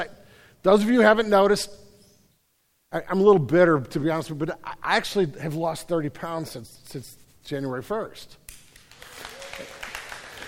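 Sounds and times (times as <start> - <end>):
speech: 0.0 - 1.8, 2.9 - 8.4
audience clapping: 8.5 - 10.4
audience cheering: 9.0 - 10.4.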